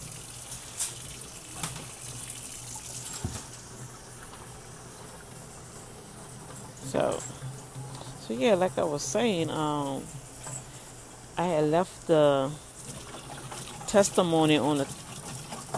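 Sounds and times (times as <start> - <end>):
water poured out in a steady splashing stream: 0.0 - 9.3, 12.7 - 15.7
speech: 6.9 - 7.4, 8.3 - 10.2, 11.4 - 12.6, 13.9 - 15.0.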